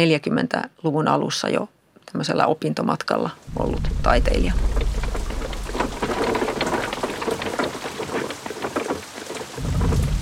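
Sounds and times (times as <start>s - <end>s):
speech: 0.0s - 5.0s
low thunder rumbling: 3.4s - 8.7s, 9.4s - 10.2s
steady rain pattering densely on a surface: 3.4s - 10.2s.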